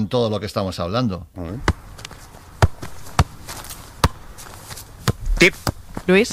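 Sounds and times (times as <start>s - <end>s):
speech: 0.0s - 1.8s, 5.4s - 6.3s
football being juggled with repeated touches: 1.6s - 6.3s.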